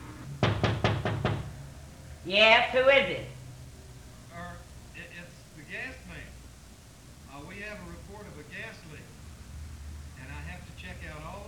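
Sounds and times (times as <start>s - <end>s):
knocking on a door: 0.4s - 1.6s
speech: 2.3s - 3.3s.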